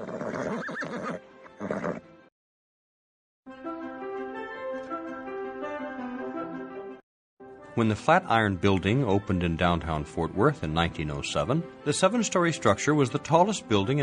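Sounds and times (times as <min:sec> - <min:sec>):
police horse neighing loudly: 0:00.0 - 0:02.0
speech: 0:07.8 - 0:14.0.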